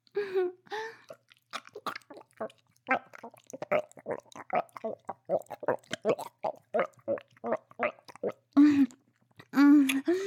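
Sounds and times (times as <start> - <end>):
throaty voiced gagging: 1.1 - 10.2
wet slurping and squelching mouth sounds: 1.1 - 10.2.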